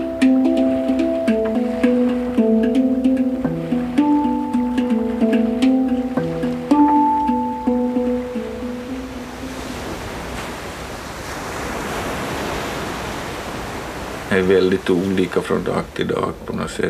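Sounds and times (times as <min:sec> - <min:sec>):
hang drum being played on a boat: 0:00.0 - 0:10.0
faint water noise: 0:00.0 - 0:16.8
speech: 0:14.9 - 0:16.8.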